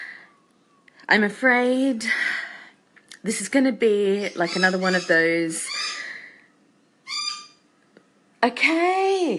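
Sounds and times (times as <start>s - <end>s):
speech: 1.1s - 2.4s, 3.2s - 5.8s, 8.4s - 9.3s
pet lorikeet squawking: 4.0s - 6.2s, 7.0s - 7.7s.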